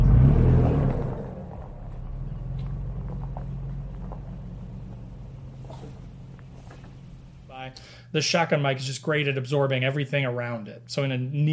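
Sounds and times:
tires rolling over gravel and twigs: 0:00.0 - 0:07.7
truck engine rumbling on gravel trail: 0:00.0 - 0:08.4
speech: 0:07.7 - 0:11.5.

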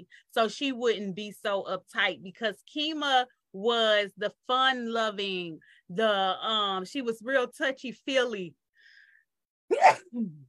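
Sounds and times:
speech: 0:00.1 - 0:08.6, 0:09.7 - 0:10.4
person sneezing: 0:09.7 - 0:10.4.

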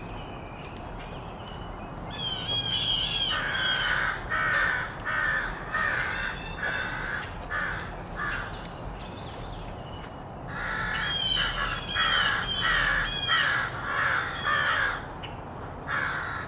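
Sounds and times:
small birds twittering: 0:00.0 - 0:16.2
low morning traffic hum: 0:00.0 - 0:16.4
crows cawing in treetops of an urban park: 0:02.1 - 0:08.8, 0:10.5 - 0:15.2, 0:15.9 - 0:16.4.

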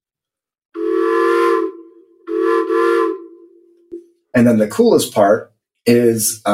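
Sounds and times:
tunable whistle tuned to a low steamboat pitch: 0:00.8 - 0:03.9
speech: 0:04.4 - 0:06.5.

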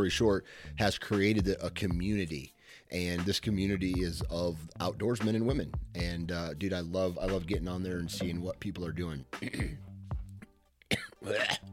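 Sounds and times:
speech: 0:00.0 - 0:09.9, 0:10.9 - 0:11.7
man clearing his throat after a bug flew into it: 0:09.4 - 0:09.9, 0:10.9 - 0:11.7.

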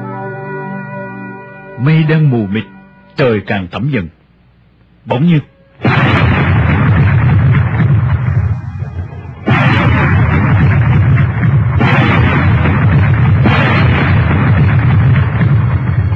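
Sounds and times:
speech: 0:02.0 - 0:04.2, 0:05.1 - 0:06.2
loud gunshots: 0:05.8 - 0:16.1
sustained roaring rumble after gunshots: 0:05.8 - 0:16.1.

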